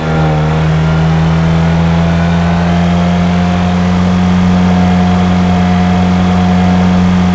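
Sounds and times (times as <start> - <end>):
simulated vehicles: 0.0 - 7.3.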